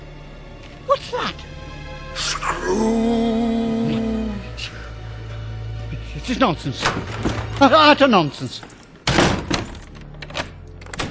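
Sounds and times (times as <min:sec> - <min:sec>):
speech: 0:01.1 - 0:01.6, 0:02.2 - 0:03.2, 0:06.2 - 0:08.8
door shutting with a heavy thud: 0:06.8 - 0:07.6, 0:09.0 - 0:09.9
metallic clicks of a lock being turned: 0:08.6 - 0:11.0.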